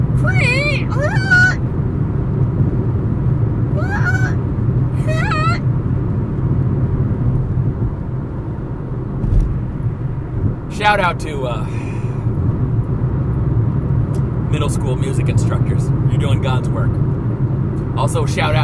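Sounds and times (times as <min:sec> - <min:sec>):
steady low rumble: 0:00.0 - 0:18.6
voice imitating screeching dying cats: 0:03.8 - 0:04.4, 0:05.0 - 0:05.6
speech: 0:10.9 - 0:11.8, 0:14.5 - 0:17.1, 0:18.0 - 0:18.6.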